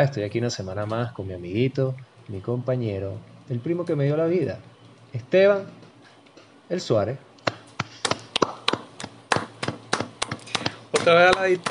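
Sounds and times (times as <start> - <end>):
speech: 0.0 - 5.8, 6.7 - 7.3, 11.1 - 11.6
sharp hand claps with slight room echo: 7.4 - 11.6.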